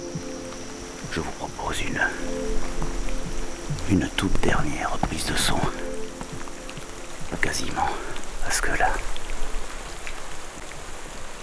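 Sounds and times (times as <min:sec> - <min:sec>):
intense rain: 0:00.0 - 0:11.4
speech: 0:01.1 - 0:03.1, 0:03.7 - 0:05.9, 0:07.3 - 0:09.2.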